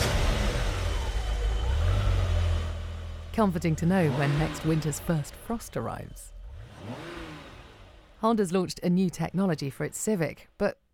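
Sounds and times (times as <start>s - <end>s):
all-terrain vehicle engine rumbling and revving: 0.0s - 8.7s
speech: 3.4s - 7.0s, 8.2s - 10.8s.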